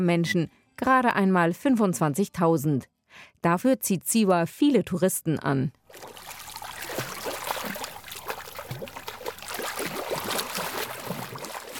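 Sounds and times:
speech: 0:00.0 - 0:06.2
lake water splashing and trickling: 0:05.8 - 0:11.7.

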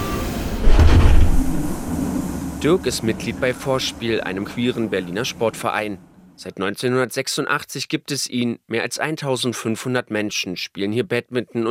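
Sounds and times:
S-Bahn commuter train rumbling along: 0:00.0 - 0:06.3
speech: 0:02.6 - 0:11.6.

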